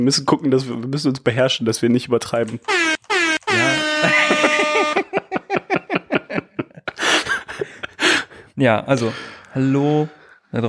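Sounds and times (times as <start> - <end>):
speech: 0.0 - 4.2, 8.6 - 10.6
soundboard air horn sound effect: 2.7 - 5.2
laughter: 3.6 - 8.4.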